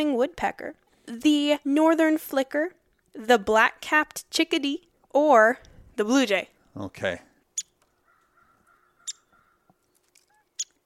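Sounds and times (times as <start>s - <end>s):
speech: 0.0s - 7.3s
crow cawing: 7.9s - 10.4s.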